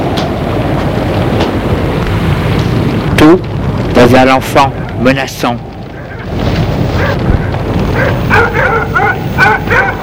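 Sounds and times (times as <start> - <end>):
low rumble of wind-like noise: 0.0 - 10.0
speech: 3.3 - 5.7
dog barking: 6.9 - 7.3, 7.9 - 10.0.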